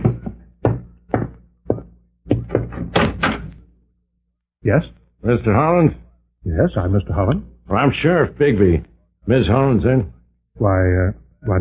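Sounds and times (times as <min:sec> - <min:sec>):
rattling knocks: 0:00.0 - 0:03.7
sharp wooden thumps of a door opened for a visitor: 0:00.0 - 0:03.7
door latch clatter: 0:02.8 - 0:03.6
speech: 0:04.7 - 0:11.6.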